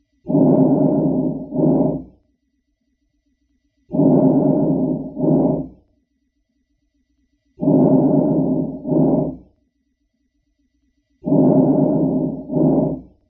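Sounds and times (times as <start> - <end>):
vesicular breath sounds: 0.3 - 2.1, 3.9 - 5.8, 7.6 - 9.4, 11.2 - 13.1.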